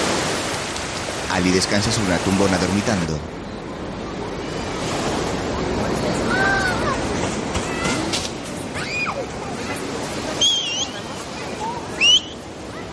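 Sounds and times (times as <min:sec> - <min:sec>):
ocean surf breaking on the shore under bright sun: 0:00.0 - 0:12.9
speech: 0:01.3 - 0:03.4.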